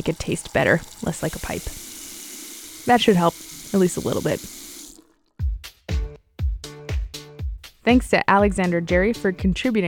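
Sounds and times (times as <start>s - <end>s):
speech: 0.0s - 1.9s, 2.8s - 4.6s, 7.9s - 9.8s
water gushing from a kitchen tap: 0.0s - 5.3s.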